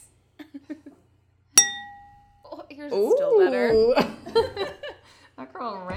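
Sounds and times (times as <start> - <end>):
two glasses clinking together: 1.6 - 2.4
speech: 2.8 - 4.8, 5.6 - 5.9.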